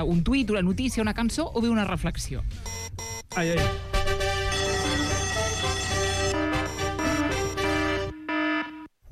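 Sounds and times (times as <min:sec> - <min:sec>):
speech: 0:00.0 - 0:03.9
loud harsh electronic alarm ringing: 0:02.6 - 0:03.6, 0:04.5 - 0:08.9.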